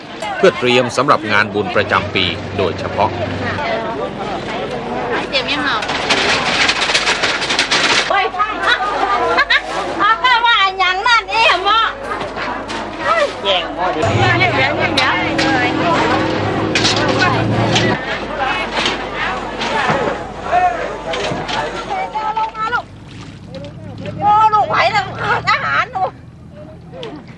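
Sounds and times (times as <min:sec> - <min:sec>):
crowd chattering in a busy fresh market in central Lampang Thailand: 0:00.0 - 0:27.3
speech: 0:00.2 - 0:06.5
rumble of passing vehicles: 0:01.0 - 0:04.9, 0:14.0 - 0:19.4, 0:22.8 - 0:27.3.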